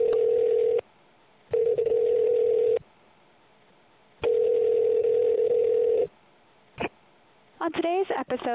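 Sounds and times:
telephone line tones heard through the handset while dialing: 0:00.0 - 0:00.8, 0:01.5 - 0:02.8, 0:04.2 - 0:06.1
speech: 0:08.3 - 0:08.5.

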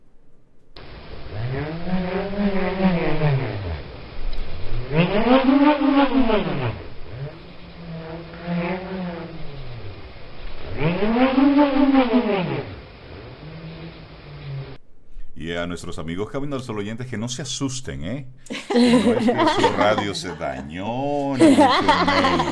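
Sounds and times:
bullroarer whirling with a loud buzzing drone: 0:00.8 - 0:14.8, 0:18.8 - 0:20.1, 0:21.2 - 0:22.5
speech: 0:15.7 - 0:22.5
laughter: 0:18.5 - 0:22.5.

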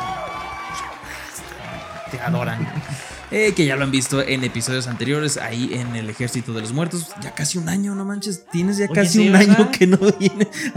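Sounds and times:
crowd clapping: 0:00.0 - 0:07.8
laughter: 0:01.2 - 0:07.4, 0:08.8 - 0:10.7
speech: 0:02.1 - 0:10.7.

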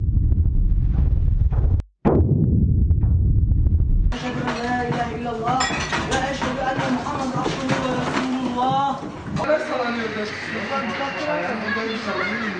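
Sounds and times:
deep heavy rumble of earthquake shaking: 0:00.0 - 0:04.2
agitated voices talking: 0:04.2 - 0:12.5.

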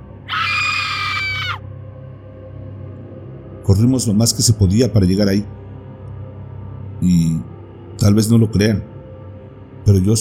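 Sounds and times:
loud piercing anguished scream: 0:00.3 - 0:01.6
speech: 0:03.7 - 0:05.6, 0:07.0 - 0:08.9, 0:09.8 - 0:10.1.

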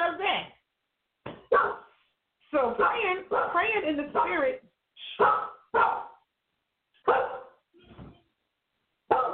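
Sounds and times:
service dog barking inside a house: 0:01.5 - 0:01.9, 0:02.8 - 0:04.5, 0:05.2 - 0:06.2, 0:07.0 - 0:07.6, 0:09.1 - 0:09.3
speech: 0:02.7 - 0:05.5.

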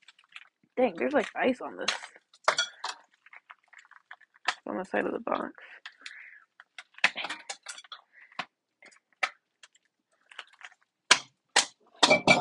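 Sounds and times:
speech: 0:00.8 - 0:02.1, 0:04.7 - 0:05.8
metal tongs dropped into a kitchen sink: 0:01.9 - 0:03.0, 0:07.1 - 0:08.0.

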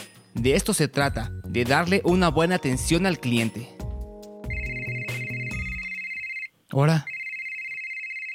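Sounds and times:
speech: 0:00.4 - 0:03.7, 0:06.8 - 0:07.1
phone ringtone for an incoming call: 0:04.5 - 0:08.3.

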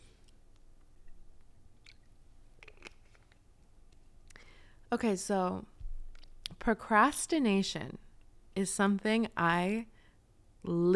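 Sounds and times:
person sipping water: 0:01.1 - 0:03.5
speech: 0:04.9 - 0:05.7, 0:06.6 - 0:08.0, 0:08.6 - 0:09.9, 0:10.6 - 0:10.9.

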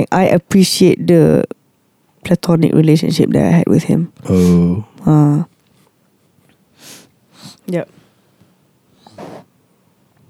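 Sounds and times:
speech: 0:00.0 - 0:01.5, 0:02.2 - 0:05.5, 0:07.7 - 0:08.0
wet snort through a nose and throat clogged with mucus: 0:04.2 - 0:04.8.

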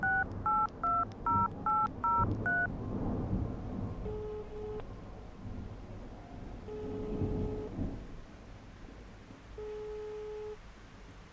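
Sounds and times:
long telephone ringing tones: 0:00.0 - 0:02.7, 0:04.0 - 0:04.8, 0:06.7 - 0:07.8, 0:09.6 - 0:10.6
touch-tone DTMF beeps of a phone number being dialed: 0:00.0 - 0:02.7, 0:04.1 - 0:04.8, 0:06.7 - 0:07.7
low rumble of rain: 0:00.0 - 0:11.3
thunder: 0:00.4 - 0:08.3.

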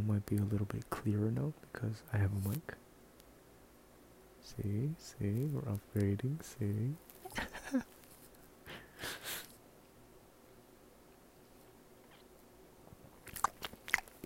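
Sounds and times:
speech: 0:00.1 - 0:02.9, 0:04.5 - 0:07.9
crunchy chewing: 0:07.0 - 0:08.4, 0:12.0 - 0:14.2
wet bites: 0:13.2 - 0:14.2.

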